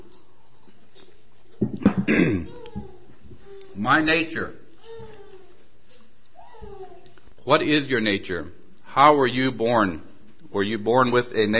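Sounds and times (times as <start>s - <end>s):
rough drawn-out throat clearing: 1.8s - 2.6s
short coughs: 1.9s - 2.5s
speech: 2.1s - 2.6s, 3.8s - 4.6s, 7.4s - 11.5s.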